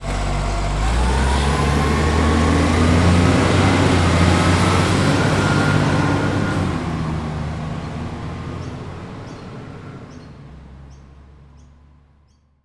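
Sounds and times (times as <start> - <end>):
garbage truck pulling away: 0.0 - 12.2
bird calls: 7.9 - 12.5.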